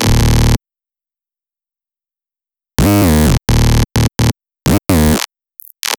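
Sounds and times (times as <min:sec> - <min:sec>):
dirty bass: 0:00.1 - 0:00.6, 0:02.8 - 0:05.2.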